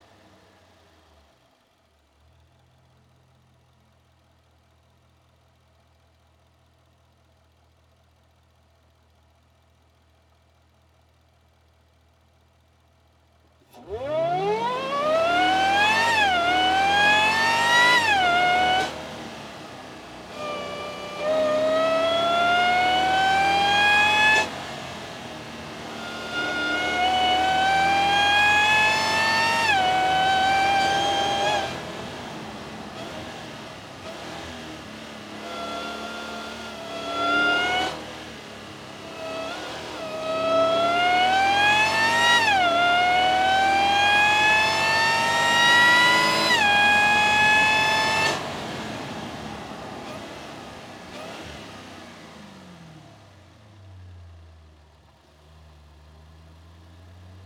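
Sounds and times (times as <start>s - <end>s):
onboard airbox intake sound of sports car engine: 13.7s - 53.8s.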